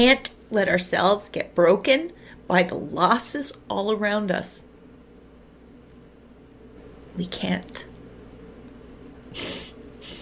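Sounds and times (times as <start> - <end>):
speech: 0.0 - 4.7, 7.2 - 7.9, 9.3 - 9.6
person sniffing: 9.3 - 10.2.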